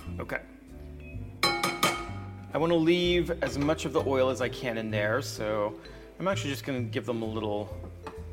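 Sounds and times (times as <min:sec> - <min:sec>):
speech: 0:00.2 - 0:00.6, 0:02.6 - 0:07.9
metal clinking on a glass bowl: 0:01.4 - 0:02.3.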